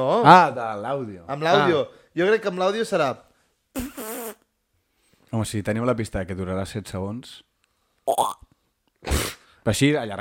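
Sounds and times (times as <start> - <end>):
speech: 0.0 - 4.0, 5.3 - 8.5, 9.1 - 10.1
person blowing a fart noise with their mouth: 3.7 - 4.5, 8.1 - 8.4, 9.0 - 9.4.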